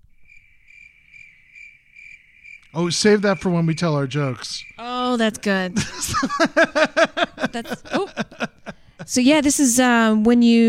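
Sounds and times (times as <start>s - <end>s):
crickets chirping sound effect: 0.0s - 10.1s
speech: 2.7s - 8.5s, 9.1s - 10.6s
laughter: 3.0s - 9.5s.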